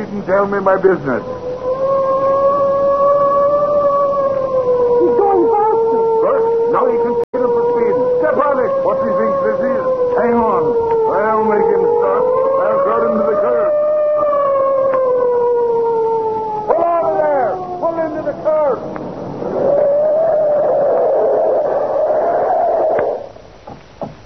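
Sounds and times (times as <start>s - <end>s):
speech: 0.2s - 1.4s
police car siren wailing: 0.3s - 23.4s.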